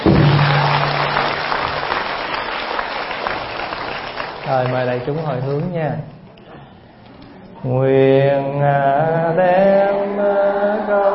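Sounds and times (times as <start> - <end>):
audience clapping at a Buddhist gathering: 0.0 - 6.0
speech: 4.5 - 6.2, 7.6 - 11.1.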